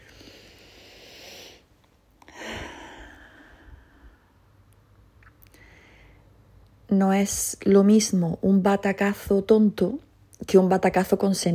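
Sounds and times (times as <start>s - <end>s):
slow deep breath with airy inhale and gusty exhale: 0.0s - 4.5s, 5.5s - 6.4s
speech: 7.0s - 11.5s.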